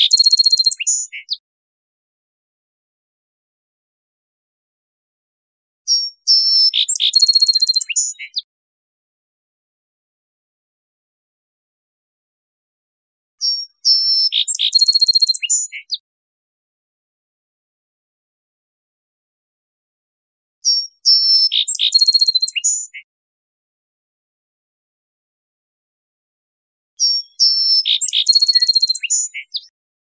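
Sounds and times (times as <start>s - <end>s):
song sparrow song with clear notes and buzzy trill: 0.0s - 1.4s, 5.9s - 8.5s, 13.4s - 16.0s, 20.6s - 23.1s, 27.0s - 29.7s.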